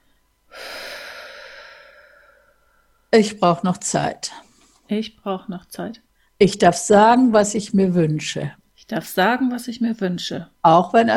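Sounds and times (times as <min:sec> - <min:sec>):
deep exhale: 0:00.5 - 0:03.1
speech: 0:03.1 - 0:11.1.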